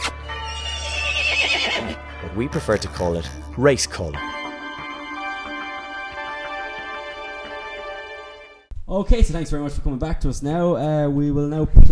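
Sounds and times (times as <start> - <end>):
horse neighing: 0.0 - 2.9
speech: 2.4 - 4.3, 8.9 - 11.8.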